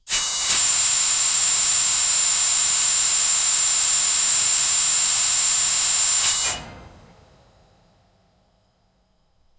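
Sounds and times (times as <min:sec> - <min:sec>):
high pressure steam release: 0:00.0 - 0:07.2.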